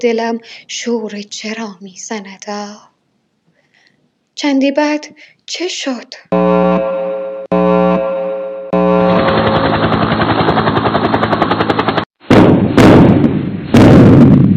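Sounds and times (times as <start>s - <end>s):
speech: 0.0s - 2.9s, 4.4s - 7.0s
droning buzz: 6.3s - 10.5s
rapid machine-like pulsing: 8.8s - 12.1s
explosion booms shaking a house: 12.2s - 14.5s.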